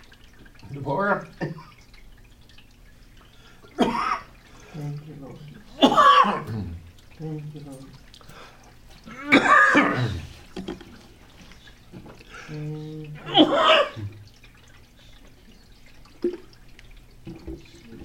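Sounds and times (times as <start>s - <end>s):
speech: 0.7s - 1.7s, 6.3s - 8.0s
person coughing after bread went down wrong: 3.7s - 4.3s, 5.8s - 6.8s, 9.1s - 10.3s, 13.2s - 14.2s.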